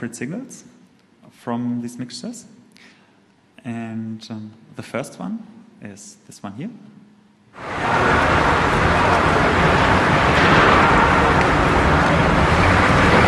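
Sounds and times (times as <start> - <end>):
speech: 0.0 - 3.0, 3.6 - 7.0, 7.6 - 9.0
steady dense road traffic noise: 7.6 - 13.2.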